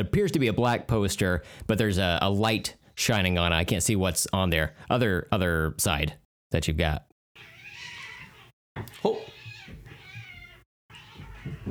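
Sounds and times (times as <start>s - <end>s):
speech: 0.0s - 7.5s, 8.8s - 9.8s
two cats yowling while fighting outside: 7.4s - 11.7s.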